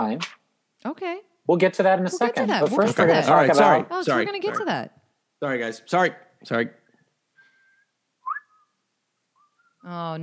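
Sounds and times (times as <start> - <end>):
speech: 0.0 - 6.8, 9.8 - 10.2
person whistling a tune: 7.5 - 8.8.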